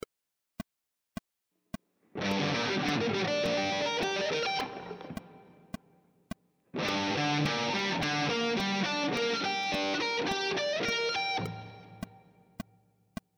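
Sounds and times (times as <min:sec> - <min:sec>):
guitar triad arpeggio sequences in Gm: 0:02.2 - 0:05.6, 0:06.8 - 0:12.0.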